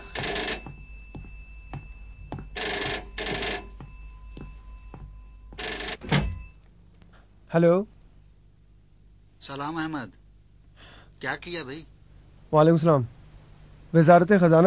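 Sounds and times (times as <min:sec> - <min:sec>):
telephone bell ringing in short bursts: 0:00.0 - 0:06.6
speech: 0:07.5 - 0:08.0, 0:09.6 - 0:10.2, 0:11.2 - 0:11.9, 0:12.5 - 0:13.2, 0:13.9 - 0:14.6.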